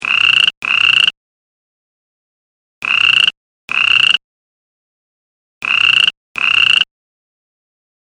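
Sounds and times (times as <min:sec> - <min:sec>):
toad trilling in short buzzy bursts: 0:00.0 - 0:01.2, 0:02.8 - 0:04.2, 0:05.6 - 0:06.9.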